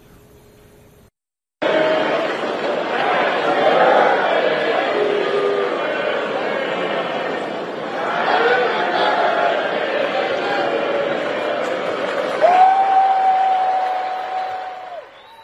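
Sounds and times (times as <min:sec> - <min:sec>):
large arena crowd singing a birthday song: 0:01.6 - 0:12.5
arena crowd cheering: 0:01.6 - 0:15.4
high whistle: 0:12.8 - 0:15.4.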